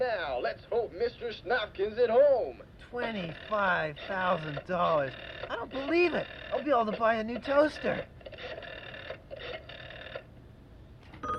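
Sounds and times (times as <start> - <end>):
speech: 0.5 - 8.7
telephone ringing with long trilling bursts: 3.0 - 10.3, 11.1 - 11.3.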